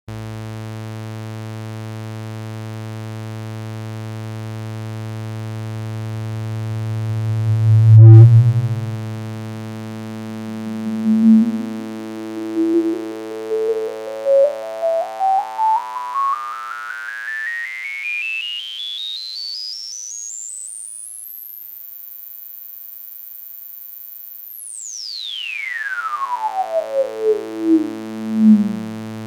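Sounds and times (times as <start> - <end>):
synthesizer with high-pass filter at maximum resonance and slow envelope: 6.6 - 18.0, 25.3 - 29.2.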